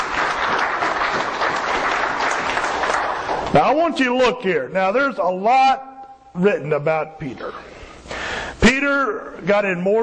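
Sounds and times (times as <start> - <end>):
audience applause: 0.0 - 3.7
speech: 3.6 - 7.8, 8.8 - 10.0.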